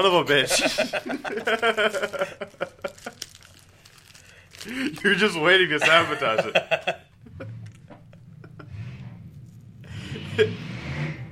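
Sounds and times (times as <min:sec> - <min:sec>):
speech: 0:00.0 - 0:02.9, 0:04.6 - 0:07.5, 0:10.4 - 0:10.7
laughter: 0:00.3 - 0:03.2, 0:04.7 - 0:08.8, 0:10.0 - 0:10.6
loud car with a rough unmuffled engine and a bad muffler passing by: 0:07.2 - 0:11.3.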